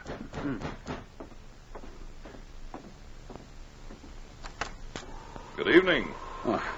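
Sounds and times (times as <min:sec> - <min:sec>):
dull knocks on the door of a police cabin at night: 0:00.0 - 0:01.4
speech: 0:00.4 - 0:00.9, 0:05.6 - 0:06.7.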